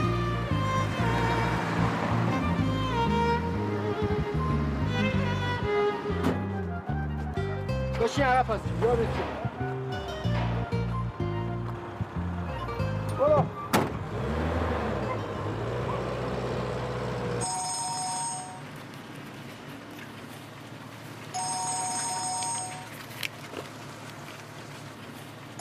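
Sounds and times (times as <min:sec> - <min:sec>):
road and engine noise: 0:00.0 - 0:25.5
vehicle rumbling: 0:00.0 - 0:25.5
speech: 0:08.1 - 0:09.4
mobile phone ringing: 0:17.4 - 0:18.7, 0:21.3 - 0:23.0.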